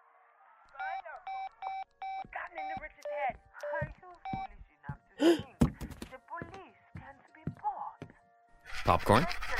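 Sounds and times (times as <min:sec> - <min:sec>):
telephone keypad dialing tones: 0:00.8 - 0:04.6
speech: 0:05.2 - 0:05.5, 0:08.9 - 0:09.5.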